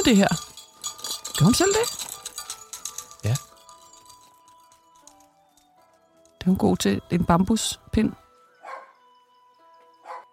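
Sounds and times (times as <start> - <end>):
speech: 0.0 - 0.5, 1.4 - 2.0, 3.2 - 3.4, 6.5 - 8.2
dog barking: 8.6 - 9.0, 10.0 - 10.3.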